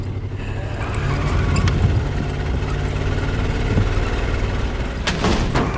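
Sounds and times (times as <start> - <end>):
car engine started by remote starter revving on a film set: 0.0 - 5.6.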